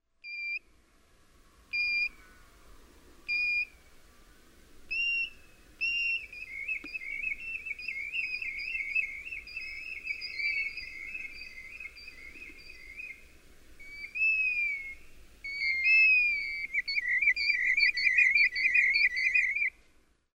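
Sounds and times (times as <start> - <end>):
Golden Plover calling: 1.7 - 2.5, 3.3 - 3.8, 4.9 - 19.7.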